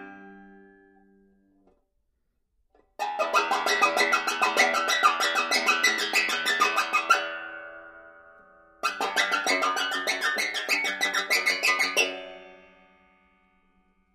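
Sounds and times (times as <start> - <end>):
banjo scratching: 3.0 - 8.2, 8.8 - 12.9.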